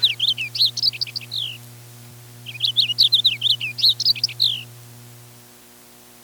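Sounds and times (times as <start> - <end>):
Purple Finch singing warbled phrases: 0.0 - 1.6, 2.4 - 4.7.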